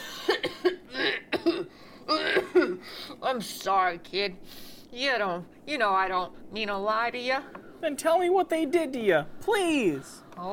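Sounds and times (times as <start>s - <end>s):
harsh raspy coughing fit: 0.0s - 3.0s
speech: 3.3s - 10.5s.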